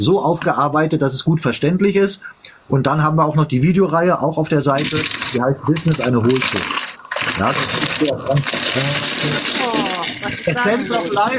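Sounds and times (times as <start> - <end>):
speech: 0.0 - 6.8, 7.4 - 9.6, 10.4 - 11.3
faint voices: 0.0 - 11.3
grinding rattle through an open microphone: 4.8 - 11.3.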